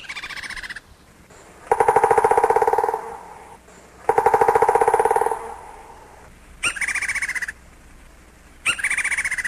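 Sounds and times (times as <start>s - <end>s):
woodpecker calls: 0.0s - 7.6s, 8.6s - 9.4s.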